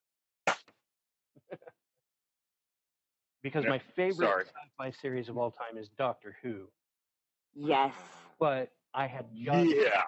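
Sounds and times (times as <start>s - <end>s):
slap sound effect: 0.4s - 0.8s
speech: 3.4s - 6.8s, 7.6s - 10.0s.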